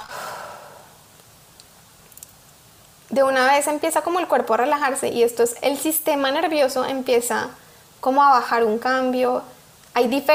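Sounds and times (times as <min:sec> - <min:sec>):
deep breathy exhale in a deep-breathing relaxation exercise: 0:00.0 - 0:01.0
speech: 0:03.1 - 0:10.3.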